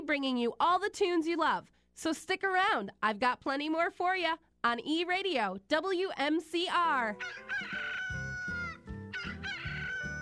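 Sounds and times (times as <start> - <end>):
speech: 0.1 - 7.9
rooster crowing: 7.2 - 10.2.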